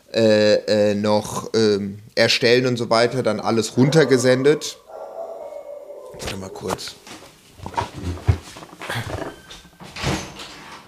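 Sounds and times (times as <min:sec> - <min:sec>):
speech: 0:00.2 - 0:04.8, 0:06.4 - 0:07.0
dog whimpering: 0:03.8 - 0:07.0
scuffling bumps: 0:06.2 - 0:10.8.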